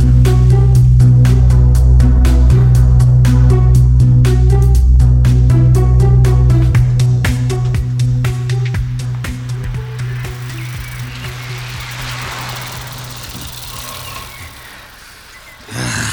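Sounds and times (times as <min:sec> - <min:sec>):
low hum: 0:00.0 - 0:15.7
steady rolling noise of bicycles being ridden: 0:00.0 - 0:15.7
rapid ticking from bicycle chains and freewheels: 0:09.7 - 0:15.7
louder rush of movement: 0:09.9 - 0:16.1.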